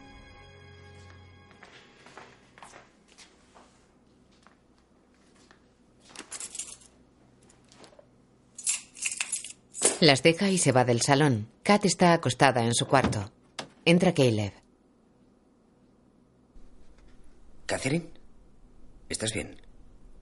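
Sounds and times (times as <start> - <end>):
faint shuffling: 1.5 - 8.1
keys jingling as keys and a handbag are picked up: 6.1 - 7.0, 8.6 - 10.0
speech: 10.0 - 14.6, 17.8 - 18.2, 19.1 - 19.6.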